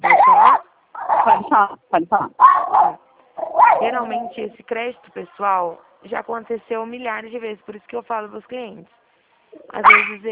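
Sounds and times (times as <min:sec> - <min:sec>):
dog barking and yelping: 0:00.0 - 0:01.6, 0:02.4 - 0:04.5, 0:09.6 - 0:10.2
speech: 0:01.2 - 0:03.0, 0:03.8 - 0:09.0, 0:09.7 - 0:10.3.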